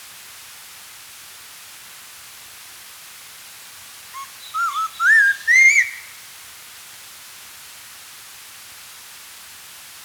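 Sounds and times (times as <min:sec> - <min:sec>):
spotted laughingthrush whistled song: 0:04.2 - 0:06.2.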